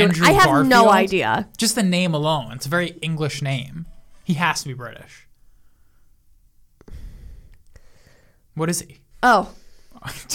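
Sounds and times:
speech: 0:00.0 - 0:05.3, 0:08.6 - 0:10.3
congested breathing through a stuffy nose: 0:05.4 - 0:08.5.

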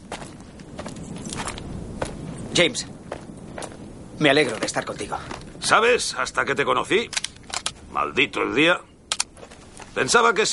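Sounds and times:
footsteps of a man walking toward horses on a salt flat: 0:00.0 - 0:05.6, 0:09.3 - 0:10.1
steady hiss: 0:00.0 - 0:10.5
speech: 0:02.6 - 0:03.0, 0:04.2 - 0:07.2, 0:08.0 - 0:08.9, 0:10.0 - 0:10.5.

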